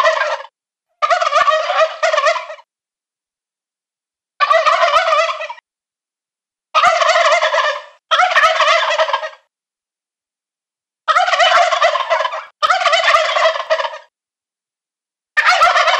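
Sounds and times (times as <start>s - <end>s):
adult male wild turkey gobbling: 0.0s - 2.7s, 4.4s - 5.6s, 6.8s - 9.5s, 11.1s - 14.1s, 15.4s - 15.9s.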